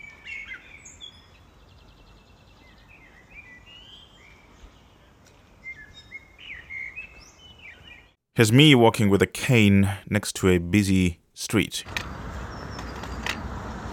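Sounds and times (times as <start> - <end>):
birds singing and chirping outdoors: 0.0 - 8.2, 12.4 - 13.4
speech: 8.4 - 12.2.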